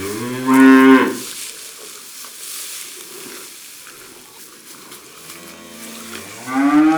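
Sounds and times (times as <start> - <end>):
cow mooing in a barn: 0.0 - 1.3, 5.2 - 6.9
low steady rustling barn ambience: 0.0 - 6.9.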